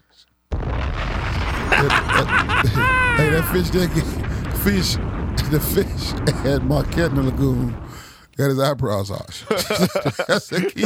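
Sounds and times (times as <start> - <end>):
bombs exploding: 0.5 - 8.3
heavy sustained rumble and crackle: 0.6 - 8.1
laughter: 1.6 - 4.2, 9.3 - 10.8
speech: 1.8 - 7.8, 8.4 - 10.8.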